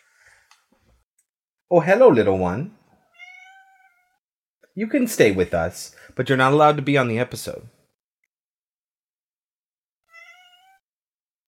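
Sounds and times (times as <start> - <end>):
speech: 1.7 - 2.8, 4.8 - 7.8
cat meowing: 3.0 - 4.2, 10.1 - 10.8.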